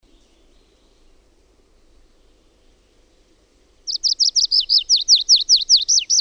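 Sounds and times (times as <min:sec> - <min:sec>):
tree pipit song: 0:00.0 - 0:06.2.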